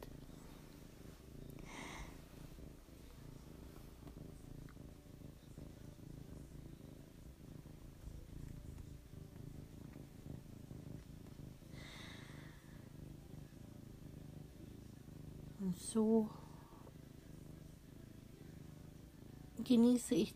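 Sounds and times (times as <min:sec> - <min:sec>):
cat purring loudly while being stroked: 0:00.0 - 0:20.3
brief breathy hisses: 0:01.5 - 0:02.4, 0:11.7 - 0:12.9
speech: 0:15.6 - 0:16.4, 0:19.7 - 0:20.3.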